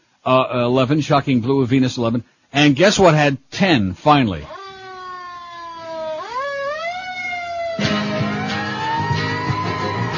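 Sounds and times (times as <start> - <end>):
speech: 0.2 - 4.6
emergency siren wailing: 4.5 - 10.1.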